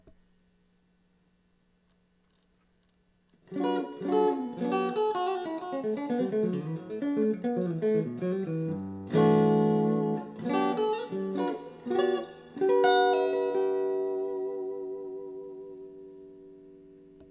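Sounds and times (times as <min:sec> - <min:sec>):
electric guitar fat man tele neck pickup: 0:03.4 - 0:17.2.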